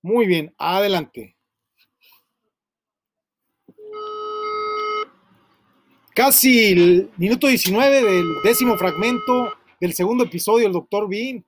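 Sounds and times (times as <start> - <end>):
speech: 0.0 - 1.4, 6.2 - 11.4
steady buzzy electronic telephone tone rich in overtones: 3.8 - 5.1, 7.9 - 9.6.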